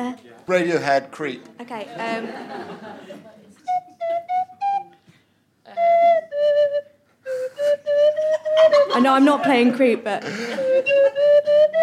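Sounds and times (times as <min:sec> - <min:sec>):
speech: 0:00.0 - 0:04.5, 0:05.7 - 0:11.8
laughter: 0:01.8 - 0:03.6, 0:08.2 - 0:11.3
slide whistle playing a short tune: 0:03.7 - 0:05.0, 0:05.7 - 0:09.0, 0:10.5 - 0:11.8.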